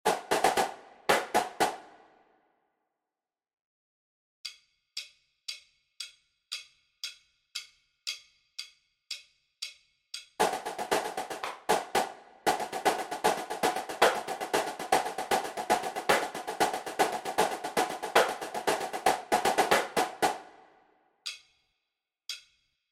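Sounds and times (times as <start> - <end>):
snare drum cadence: 0.1 - 2.0, 10.4 - 20.6.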